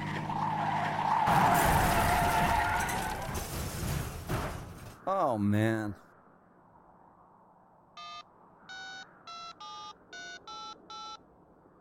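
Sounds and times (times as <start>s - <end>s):
car skidding on a snowy road in a blizzard into a ditch: 0.0s - 4.0s
speech: 5.1s - 6.1s.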